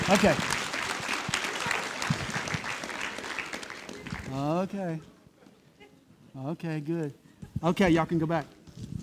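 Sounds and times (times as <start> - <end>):
crowd applauding: 0.0 - 4.6
speech: 0.1 - 0.5, 4.4 - 5.1, 6.4 - 8.9.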